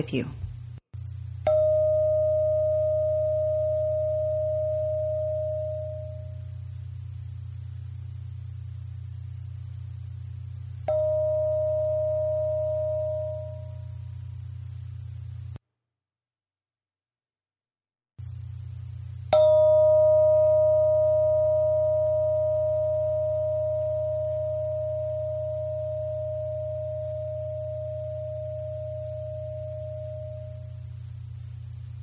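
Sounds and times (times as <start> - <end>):
speech: 0.0 - 0.4
steady low hum: 0.0 - 15.6, 18.2 - 32.0
bell ringing: 1.5 - 6.3, 10.9 - 13.8, 19.3 - 30.6.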